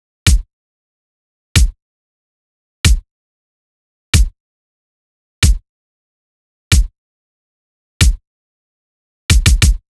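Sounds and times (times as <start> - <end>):
Latin kick drum loop: 0.3 - 0.5, 1.6 - 1.8, 5.4 - 5.6, 6.7 - 6.9, 9.3 - 9.8.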